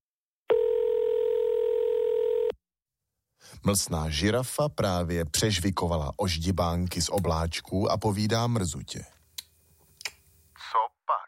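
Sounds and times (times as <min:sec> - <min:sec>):
steady telephone dial tone: 0:00.5 - 0:02.6
speech: 0:03.6 - 0:09.2.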